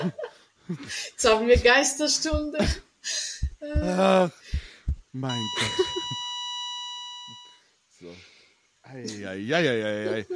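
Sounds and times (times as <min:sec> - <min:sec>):
laughter: 0:00.0 - 0:00.9, 0:05.5 - 0:06.2, 0:09.9 - 0:10.3
speech: 0:00.0 - 0:04.5, 0:05.2 - 0:06.2, 0:08.0 - 0:08.3, 0:08.9 - 0:10.3
mobile phone electronic beep: 0:05.3 - 0:07.6.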